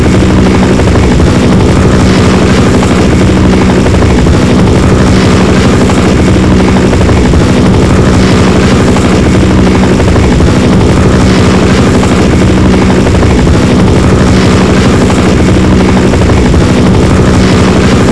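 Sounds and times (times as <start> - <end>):
helicopter: 0.0 - 18.0.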